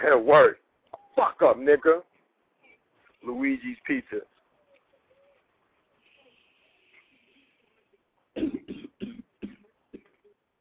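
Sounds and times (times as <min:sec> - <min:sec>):
speech: 0:00.0 - 0:00.6, 0:01.2 - 0:02.1, 0:03.2 - 0:04.3
person coughing hard: 0:08.4 - 0:10.2.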